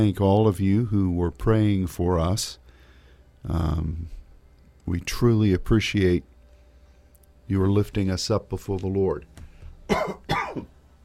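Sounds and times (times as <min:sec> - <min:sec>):
speech: 0:00.0 - 0:02.6, 0:03.4 - 0:04.2, 0:04.9 - 0:06.3, 0:07.5 - 0:09.3, 0:09.9 - 0:10.8
harsh throaty coughs: 0:09.9 - 0:10.7.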